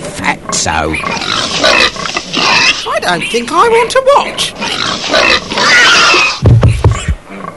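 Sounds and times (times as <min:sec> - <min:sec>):
pig grunting as it is slaughtered: 0:00.5 - 0:02.9, 0:04.6 - 0:07.5
speech: 0:00.6 - 0:06.5
pig squealing as it is slaughtered: 0:00.9 - 0:03.5, 0:04.3 - 0:07.5.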